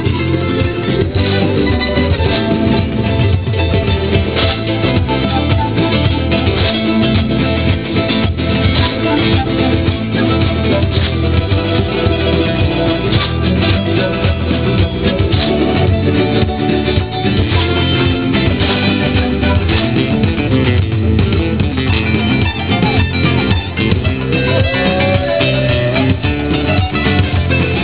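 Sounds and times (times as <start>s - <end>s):
Peruvian guitar players in Rome: 0.0s - 27.8s.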